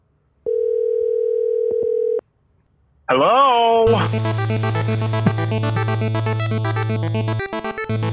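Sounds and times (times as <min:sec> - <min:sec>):
phone line steady electronic tone as a phone call is placed: 0:00.4 - 0:02.2
speech: 0:03.1 - 0:08.0.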